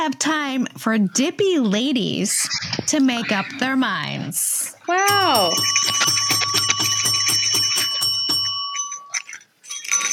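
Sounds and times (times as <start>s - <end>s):
speech: 0.0s - 6.5s
holiday bell ringing: 5.1s - 10.1s.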